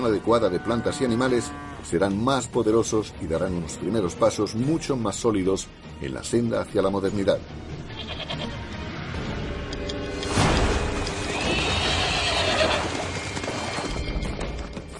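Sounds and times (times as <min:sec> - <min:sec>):
speech: 0:00.0 - 0:07.8
outdoor background: 0:00.0 - 0:14.9
horse whinnying: 0:08.0 - 0:08.6, 0:11.2 - 0:14.2.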